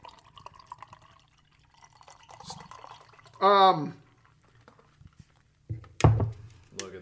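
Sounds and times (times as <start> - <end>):
beer glugging into a glass: 0.0 - 4.7
speech: 3.4 - 4.0.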